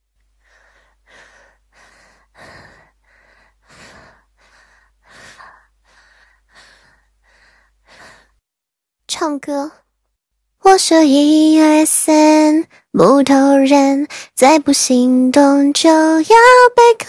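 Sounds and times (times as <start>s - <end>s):
heavy rapid panting: 0.3s - 8.4s
speech: 9.1s - 9.8s, 10.7s - 17.0s.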